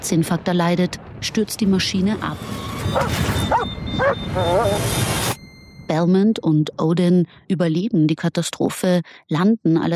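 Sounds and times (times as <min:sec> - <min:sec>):
speech: 0:00.0 - 0:05.3, 0:05.9 - 0:09.9
dog whimpering aboard an aircraft flying through a storm over Alaska: 0:03.0 - 0:04.9.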